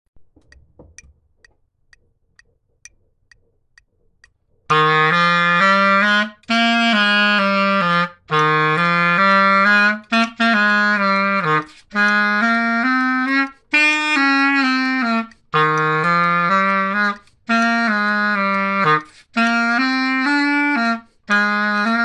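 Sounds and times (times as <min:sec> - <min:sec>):
bass boogie bassline: 0:04.7 - 0:22.0.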